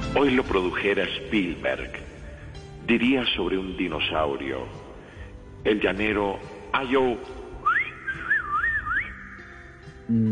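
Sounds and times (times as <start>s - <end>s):
speech: 0.2s - 2.1s, 2.9s - 4.8s, 5.6s - 7.4s, 10.1s - 10.3s
person whistling a short wavering melody: 7.6s - 9.7s.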